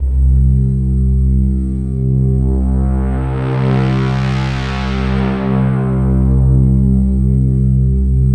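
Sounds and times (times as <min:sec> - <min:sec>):
Yamaha SY22 synthesizer Prophecy patch C2 note: 0:00.0 - 0:08.2.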